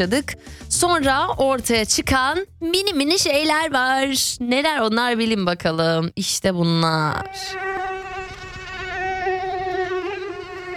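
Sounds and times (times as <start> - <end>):
speech: 0.0 - 7.7
mosquito whining near the ear in summer: 7.2 - 10.7.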